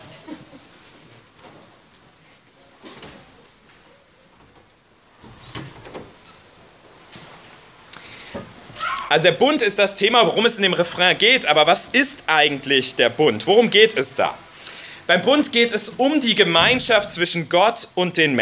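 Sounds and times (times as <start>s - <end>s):
faint hiss: 0.0s - 18.4s
speech: 9.1s - 14.5s, 15.1s - 18.4s
door being handled and pushed shut: 16.3s - 17.5s.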